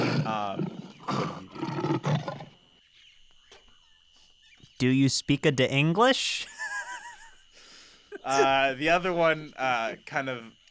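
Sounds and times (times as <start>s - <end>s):
person imitating lion roar grunts: 0.0s - 2.0s
speech: 4.8s - 6.5s, 8.2s - 10.6s
laughter: 6.4s - 7.5s, 8.1s - 8.8s.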